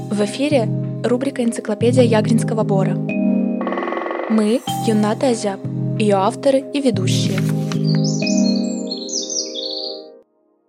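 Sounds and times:
speech: 0.1s - 3.1s, 4.3s - 7.5s
white-tailed eagle calling: 7.7s - 10.1s.

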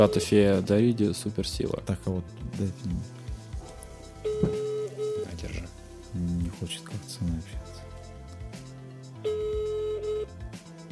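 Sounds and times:
telephone busy signal during a call: 0.0s - 0.4s, 4.2s - 5.3s, 9.2s - 10.3s
speech: 0.0s - 3.2s, 6.2s - 7.8s.

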